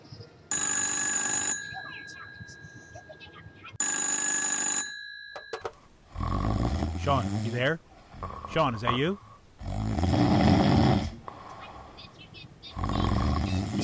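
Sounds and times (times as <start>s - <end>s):
faint noise: 0.0s - 13.8s
telephone ringing: 0.5s - 6.0s
speech: 7.1s - 7.9s, 8.5s - 9.3s.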